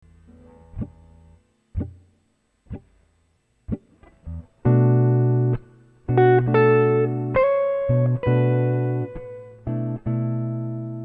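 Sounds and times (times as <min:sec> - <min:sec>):
minor blues licks: 0:00.1 - 0:11.0.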